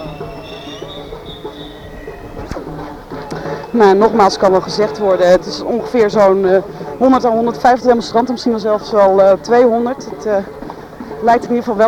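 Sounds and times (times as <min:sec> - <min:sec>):
tram wheels squealing high-pitched in a street: 0:00.0 - 0:05.4
tram rolling past with a steady low rumble: 0:00.0 - 0:06.5
faint rhythmic clacks of a tram: 0:00.0 - 0:11.8
speech: 0:02.8 - 0:10.6, 0:11.2 - 0:11.8.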